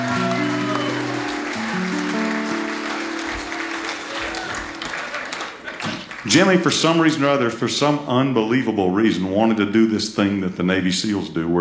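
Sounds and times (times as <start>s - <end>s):
audience applause: 0.0s - 7.1s
speech: 6.3s - 11.5s.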